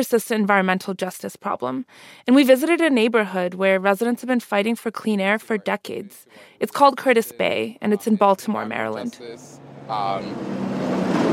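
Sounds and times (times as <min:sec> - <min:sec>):
speech: 0:00.0 - 0:10.9
heavy truck rumbling past in an industrial harbor area in Baltimore: 0:08.8 - 0:11.3.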